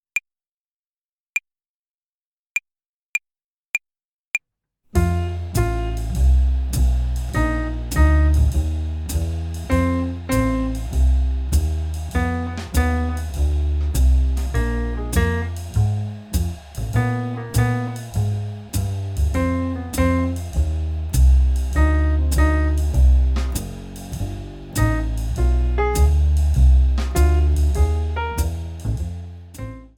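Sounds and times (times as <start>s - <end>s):
slow blues scale practice play-along music: 4.9s - 29.9s.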